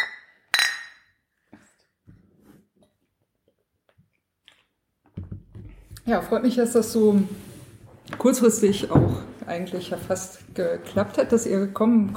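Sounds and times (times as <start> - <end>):
glasses clinking in a toast: 0.0 - 1.2
speech: 6.1 - 7.5, 8.2 - 12.1.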